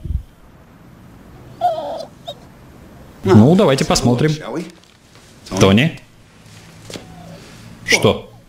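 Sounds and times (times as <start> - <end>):
dog whimpering: 1.4 - 2.5, 6.7 - 8.4
speech: 3.2 - 4.8, 5.5 - 6.0, 7.9 - 8.3.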